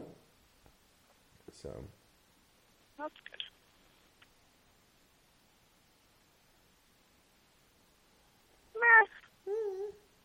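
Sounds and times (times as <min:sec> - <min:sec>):
speech: 0:01.6 - 0:02.0, 0:03.0 - 0:03.4
cat meowing: 0:08.8 - 0:09.2.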